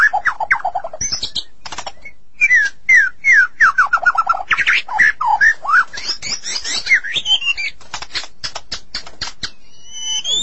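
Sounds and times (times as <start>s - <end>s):
magpie-robin or shama song: 0.0s - 7.8s, 9.4s - 10.4s
magpie-robin or shama clicking sounds: 1.6s - 2.8s, 6.2s - 9.6s.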